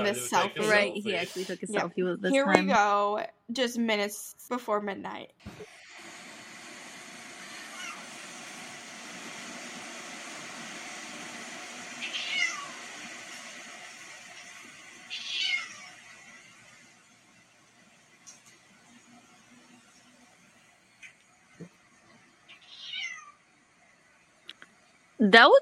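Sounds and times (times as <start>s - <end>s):
speech: 0.0s - 5.8s, 25.2s - 25.6s
cat meowing at a door: 12.0s - 12.7s, 15.1s - 16.0s, 22.5s - 23.4s.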